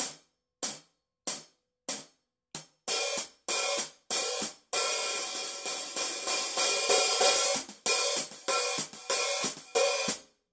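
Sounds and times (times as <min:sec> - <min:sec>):
heavy hi-hat cymbal pattern: 0:00.0 - 0:10.2.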